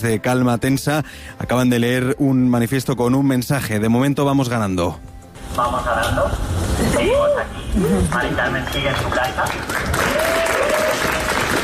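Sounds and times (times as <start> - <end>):
speech: 0.0 - 11.0
large crowd applauding at a street protest encampment in Madrid: 8.1 - 11.6.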